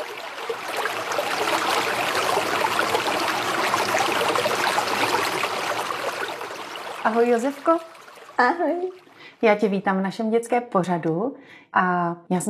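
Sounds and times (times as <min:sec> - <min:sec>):
rushing and babbling river water: 0:00.0 - 0:09.4
speech: 0:07.0 - 0:12.4.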